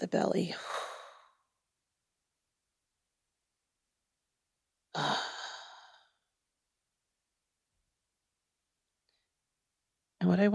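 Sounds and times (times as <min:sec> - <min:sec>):
deep breathy exhale during a relaxation breathing exercise: 0:00.5 - 0:01.4, 0:05.0 - 0:06.1.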